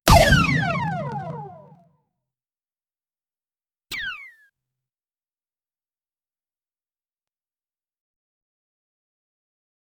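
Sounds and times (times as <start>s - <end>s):
light cartoon gun shot air burst: 0.1s - 1.7s.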